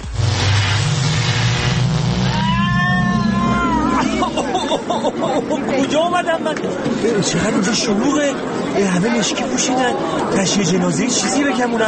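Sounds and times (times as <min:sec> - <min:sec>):
dense whooshing rush of sci-fi time machine powering up: 0:00.0 - 0:04.6
wavering sliding electronic tones: 0:00.0 - 0:04.6
rising low hum of sci-fi machine: 0:00.0 - 0:05.2
laughter: 0:03.4 - 0:06.8
speech: 0:06.1 - 0:11.8.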